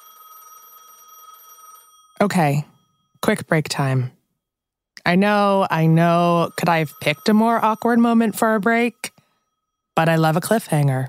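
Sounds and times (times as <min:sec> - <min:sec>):
telephone ringing with electronic trill: 0:00.0 - 0:03.3, 0:05.2 - 0:10.6
speech: 0:02.2 - 0:04.2, 0:05.0 - 0:09.1, 0:10.0 - 0:11.0.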